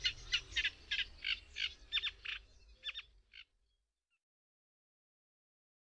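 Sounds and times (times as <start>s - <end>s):
Eurasian reed warbler singing rasping chirring notes: 0.0s - 3.5s.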